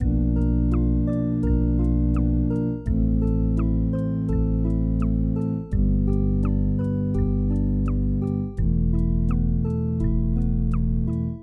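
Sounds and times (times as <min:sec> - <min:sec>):
84 bpm lofi chill music loop: 0:00.0 - 0:11.4.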